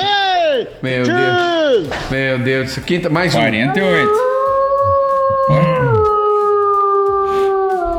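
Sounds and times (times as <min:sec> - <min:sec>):
speech: 0:00.8 - 0:04.3, 0:05.5 - 0:05.7
person howling like a lone wolf calling a pampas deer: 0:03.7 - 0:07.9.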